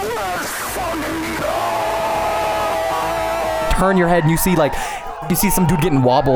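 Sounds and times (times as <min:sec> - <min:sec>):
laughter: 0:00.3 - 0:06.3
man's voice imitating players screaming no at a video game fighting tournament: 0:03.7 - 0:06.3
speech: 0:03.8 - 0:06.3.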